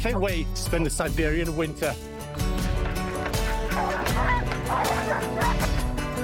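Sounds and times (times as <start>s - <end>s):
speech: 0.0s - 2.1s
many sled dogs barking and yelping: 3.2s - 6.1s.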